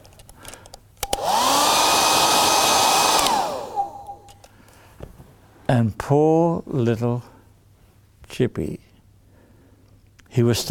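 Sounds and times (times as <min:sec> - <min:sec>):
hair dryer blowing: 0:01.0 - 0:04.3
speech: 0:05.7 - 0:07.3, 0:08.4 - 0:08.9, 0:10.4 - 0:10.6.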